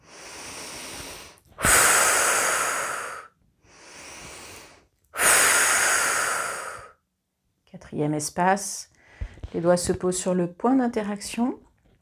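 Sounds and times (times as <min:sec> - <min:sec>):
slow deep breathing during a relaxation exercise: 0:00.0 - 0:07.0
speech: 0:07.9 - 0:08.9, 0:09.5 - 0:11.6.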